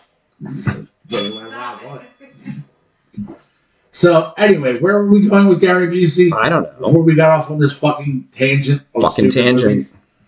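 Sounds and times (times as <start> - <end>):
speech: 0.4 - 2.5, 4.0 - 10.0
bell being smacked and ringing: 1.1 - 2.4.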